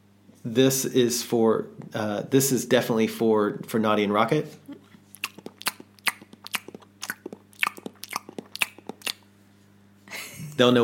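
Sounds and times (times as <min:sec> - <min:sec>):
speech: 0:00.4 - 0:04.8, 0:10.6 - 0:10.8
wet chewing and crunching against the microphone: 0:04.9 - 0:09.3.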